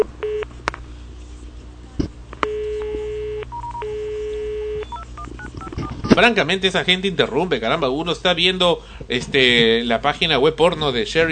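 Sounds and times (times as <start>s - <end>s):
phone line buzzing: 0.0s - 0.5s, 2.4s - 6.2s
faint hum: 0.0s - 11.3s
touch-tone telephone dialing beeps: 2.5s - 6.1s
speech: 6.2s - 11.3s.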